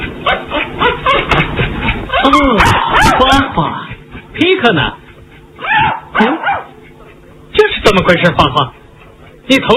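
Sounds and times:
dog barking: 0:00.2 - 0:01.4, 0:02.1 - 0:03.5, 0:05.6 - 0:06.8
speech: 0:04.6 - 0:05.0, 0:08.0 - 0:08.8, 0:09.5 - 0:09.7.

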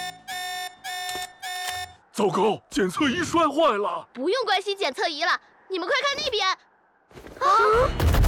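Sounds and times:
alarm blaring in electronic tone bursts: 0:00.0 - 0:02.1
speech: 0:01.2 - 0:01.4, 0:02.2 - 0:06.7, 0:07.4 - 0:08.1.

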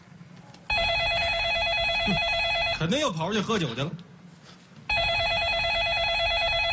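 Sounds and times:
telephone ringing with warbling electronic tone: 0:00.7 - 0:03.0, 0:04.9 - 0:06.7
speech: 0:02.1 - 0:04.1.

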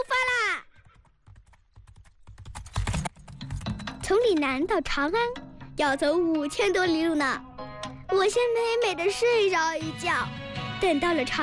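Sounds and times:
horse hooves clip-clopping outside a post station: 0:00.8 - 0:04.1
speech: 0:04.1 - 0:07.5, 0:08.1 - 0:11.4.

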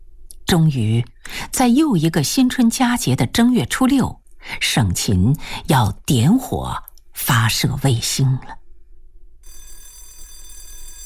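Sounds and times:
speech: 0:00.5 - 0:08.6
electric theatre bell ringing before a performance: 0:09.4 - 0:11.0.

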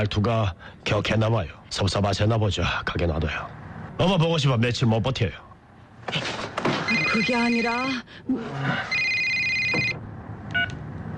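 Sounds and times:
speech: 0:00.0 - 0:05.4, 0:06.1 - 0:09.0
low hum: 0:00.0 - 0:11.1
telephone ringing with electronic trill: 0:06.9 - 0:08.0, 0:08.8 - 0:10.0.

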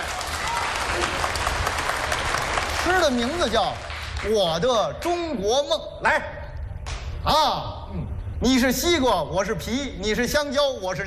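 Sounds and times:
audience applause at a live comedy performance: 0:00.0 - 0:04.4
speech: 0:02.9 - 0:06.4, 0:07.2 - 0:11.0.

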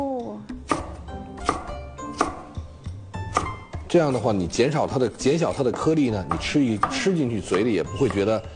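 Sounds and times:
knife chopping bitter melon on a cutting board: 0:00.6 - 0:02.6, 0:03.2 - 0:04.2, 0:05.3 - 0:08.3
speech: 0:03.9 - 0:08.5.

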